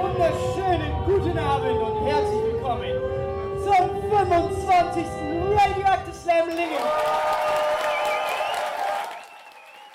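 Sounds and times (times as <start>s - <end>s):
speech: 0.2s - 0.5s, 1.1s - 7.6s
audience of over 100 spectators clapping at a poetry slam: 6.4s - 9.9s
crowd cheering at a poetry slam: 6.5s - 9.9s
whoops and whistles from poetry slam audience: 7.4s - 9.9s.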